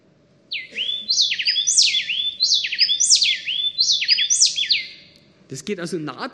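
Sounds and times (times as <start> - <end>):
faint low hum: 0.0 - 6.3
male and female happy wren singing a duet: 0.5 - 5.5
speech: 5.5 - 6.3.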